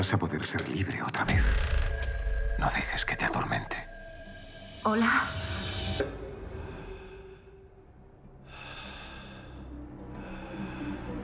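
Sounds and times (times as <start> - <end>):
speech: 0.0 - 1.9, 2.6 - 3.9, 4.8 - 6.2
heavy breathing by the ear: 6.4 - 11.2.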